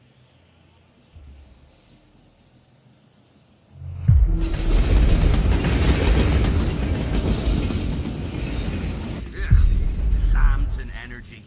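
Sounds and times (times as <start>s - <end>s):
train rumbling with wheels and rail noise: 3.8s - 11.4s.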